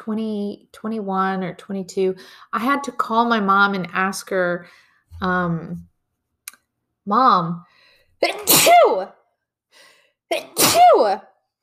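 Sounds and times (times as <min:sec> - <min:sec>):
speech: 0:00.0 - 0:05.9, 0:07.1 - 0:09.2, 0:09.8 - 0:11.3
person sneezing: 0:08.2 - 0:09.0, 0:10.3 - 0:11.2.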